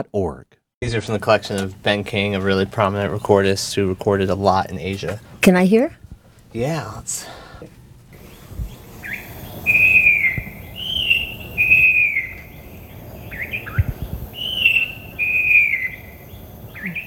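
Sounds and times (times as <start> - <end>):
speech: 0.0 - 7.8
soft background hiss: 0.0 - 17.0
falcated wren-babbler Tilochicla falcata singing whistled phrases: 8.2 - 17.0.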